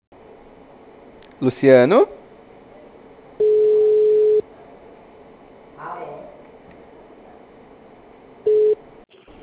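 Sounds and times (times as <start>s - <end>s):
speech: 1.4s - 2.2s
telephone line tone after a dropped call: 3.4s - 4.4s, 8.5s - 8.8s.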